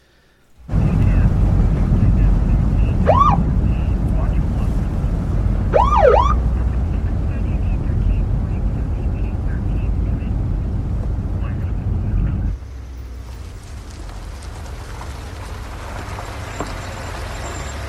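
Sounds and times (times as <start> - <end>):
road noise: 0.0 - 17.8
car engine rumble: 0.5 - 17.8
police siren whooping chirps as a car gets pulled over: 2.9 - 3.6, 5.7 - 6.4.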